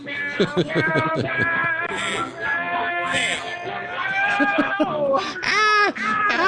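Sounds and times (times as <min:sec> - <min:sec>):
laughter: 0:00.3 - 0:02.4, 0:03.1 - 0:05.4
person imitating a cat meowing: 0:05.4 - 0:06.4.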